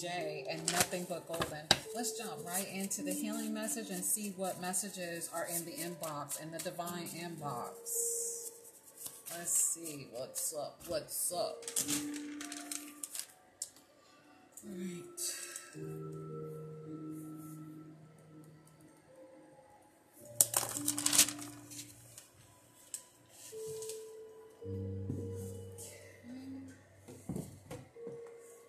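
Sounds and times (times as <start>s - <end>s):
speech: 0.0s - 8.2s, 9.3s - 12.7s, 14.6s - 16.3s
low steady music: 0.0s - 28.6s
deck of cards being shuffled: 20.4s - 21.9s.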